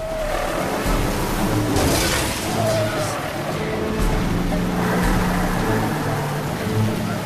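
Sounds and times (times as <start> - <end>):
heavy vehicle engines roaring: 0.0 - 7.2
steady hiss of driving rain: 0.0 - 7.2.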